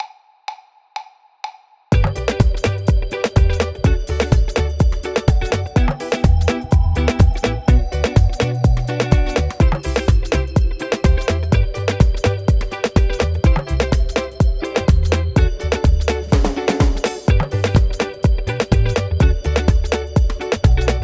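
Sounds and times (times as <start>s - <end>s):
reggae music at 125 BPM: 1.9s - 21.0s.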